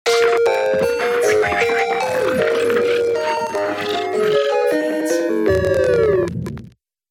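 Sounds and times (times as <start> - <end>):
crazy electronic frog sound: 0.1 - 6.1.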